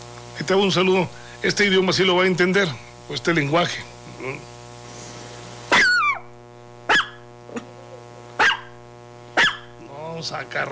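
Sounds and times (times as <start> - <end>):
steady hum: 0.0 - 10.7
speech: 0.4 - 4.5, 10.2 - 10.7
person imitating dog barks: 6.9 - 8.7, 9.4 - 9.7.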